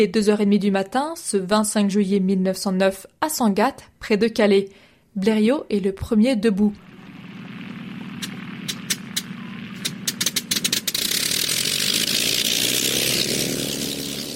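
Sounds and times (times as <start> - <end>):
speech: 0.0 - 6.9
early airplane small piston engine running: 6.8 - 14.3.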